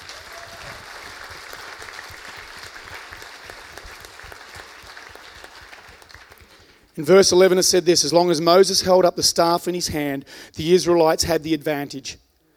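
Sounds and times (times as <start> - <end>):
audience applause: 0.0 - 6.8
speech: 7.0 - 12.2.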